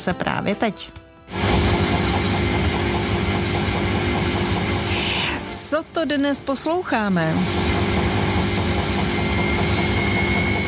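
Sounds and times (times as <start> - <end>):
speech: 0.0 - 1.0, 5.7 - 7.8
washing machine drum on spin cycle: 1.3 - 5.0, 7.0 - 10.6.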